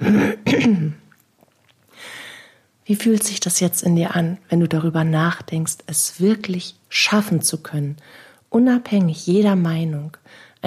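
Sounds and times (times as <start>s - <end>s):
person clearing throat: 0.0s - 1.1s
speech: 0.1s - 1.0s, 2.9s - 10.6s.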